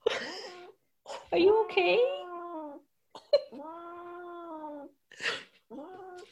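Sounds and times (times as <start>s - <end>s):
speech: 1.3s - 2.2s
male cat moaning and yowling while dreaming in his sleep: 1.6s - 5.0s, 5.7s - 6.3s.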